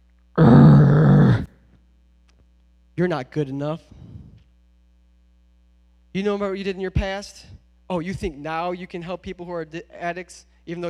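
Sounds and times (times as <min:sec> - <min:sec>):
deep menacing demonic growl: 0:00.4 - 0:01.5
speech: 0:03.0 - 0:04.0, 0:06.1 - 0:10.8.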